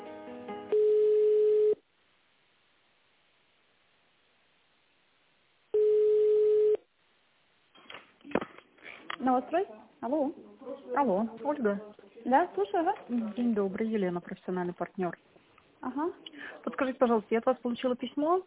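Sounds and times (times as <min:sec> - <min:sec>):
telephone ringback tones while an office call is transferred: 0:00.7 - 0:01.8, 0:05.8 - 0:06.8
speech: 0:09.3 - 0:18.4.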